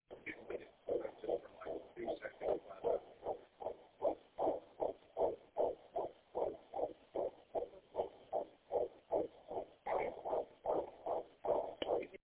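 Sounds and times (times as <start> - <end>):
baby fetal heartbeat: 0.1 - 12.2.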